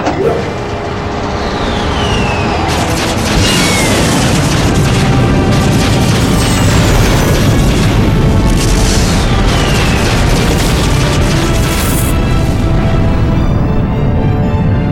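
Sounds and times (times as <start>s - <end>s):
explosions with rumbling bursts: 0.0s - 14.8s
sharp sweeping zaps: 1.8s - 12.2s
weapons firing: 2.3s - 12.2s.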